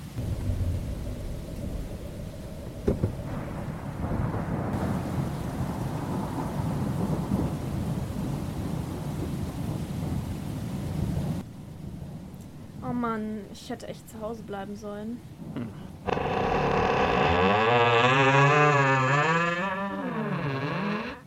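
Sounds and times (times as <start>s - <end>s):
deep rolling thunder: 0.0s - 11.4s
heavy steady rain in a raging storm: 0.0s - 13.2s, 15.2s - 21.2s
speech: 13.0s - 15.9s.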